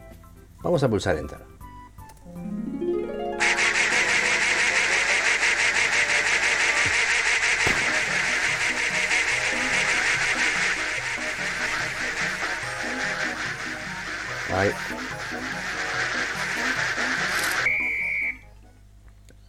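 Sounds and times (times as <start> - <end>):
speech: 0.6 - 1.6, 14.5 - 15.1
short rising run of electronic tones in an audio game: 2.4 - 18.4
chorus of many ducks quacking in an audio game: 3.4 - 17.7.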